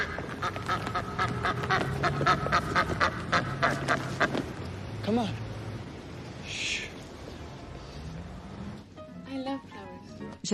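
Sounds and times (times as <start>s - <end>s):
duck on a street quacking rapidly: 0.0s - 4.4s
speech: 5.1s - 5.4s.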